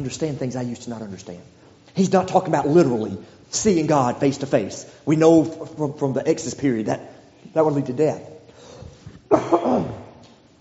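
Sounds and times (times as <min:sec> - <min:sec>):
speech: 0:00.0 - 0:08.4, 0:09.3 - 0:10.0
rough rasping throat clearing: 0:09.3 - 0:10.2
sharp cough: 0:09.3 - 0:10.2.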